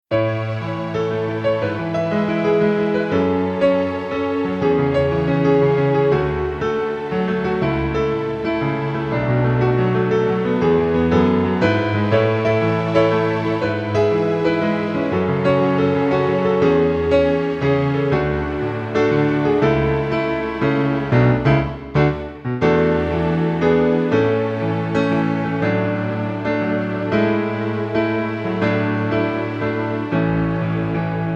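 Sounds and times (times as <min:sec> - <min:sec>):
piano strings: 0:00.1 - 0:31.3.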